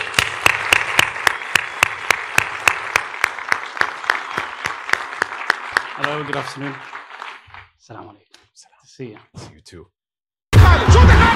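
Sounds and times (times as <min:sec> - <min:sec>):
audience applauding: 0:00.0 - 0:08.2
sharp evenly spaced claps: 0:00.0 - 0:09.2
speech: 0:06.0 - 0:06.9, 0:07.9 - 0:10.0.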